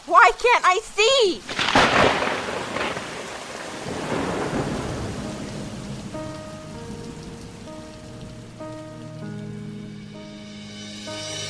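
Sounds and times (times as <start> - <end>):
steady rain pouring: 0.0 - 10.4
speech: 0.5 - 2.3
deep rolls of thunder: 1.5 - 9.2.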